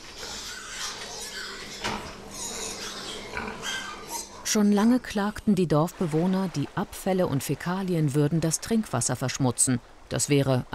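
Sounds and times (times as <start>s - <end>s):
pigs grunting and squealing at a pig fattening farm: 0.0s - 4.5s
speech: 4.5s - 10.7s.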